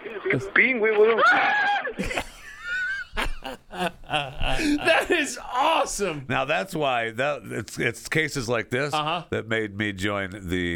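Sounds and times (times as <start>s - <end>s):
laughter: 0.2s - 5.9s
speech: 0.3s - 2.3s, 3.4s - 10.7s
people screaming in a played recording: 1.2s - 2.0s.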